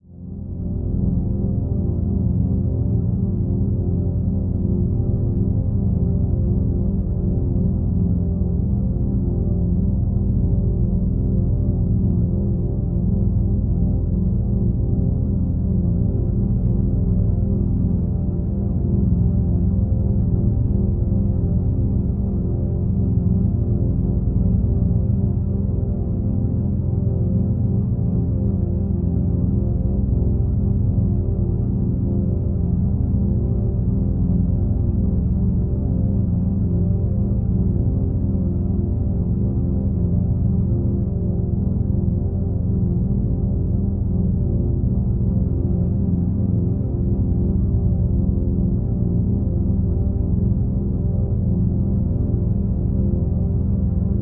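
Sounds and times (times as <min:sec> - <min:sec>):
mellow synth strings drone: 0:00.1 - 0:54.2.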